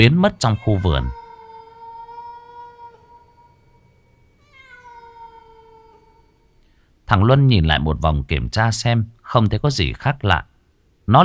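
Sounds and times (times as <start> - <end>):
speech: 0.0 - 1.2, 7.1 - 10.5
cat meowing: 0.3 - 3.7, 4.4 - 6.4.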